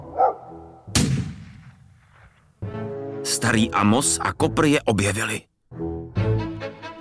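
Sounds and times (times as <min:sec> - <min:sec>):
dog barking: 0:00.0 - 0:00.5
rifle gunshots with long echo: 0:00.9 - 0:02.5
speech: 0:03.3 - 0:05.5.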